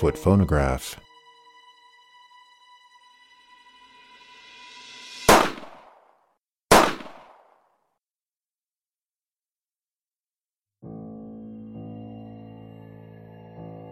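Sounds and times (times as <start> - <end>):
speech: 0.0 - 1.0
gunshots echoing: 5.3 - 6.0, 6.7 - 7.5.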